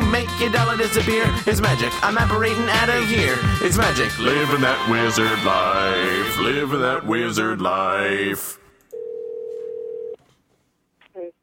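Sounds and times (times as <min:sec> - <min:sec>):
speech: 0:00.4 - 0:08.6
Skype call dialing tone hum: 0:08.9 - 0:10.2.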